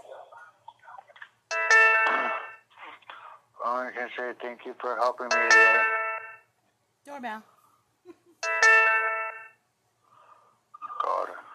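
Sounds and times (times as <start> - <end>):
doorbell ringing in a house: 1.5 - 2.6, 5.3 - 6.4, 8.4 - 9.6
short voice fragments: 2.0 - 5.9, 10.8 - 11.5
speech: 3.7 - 6.0, 7.1 - 8.2.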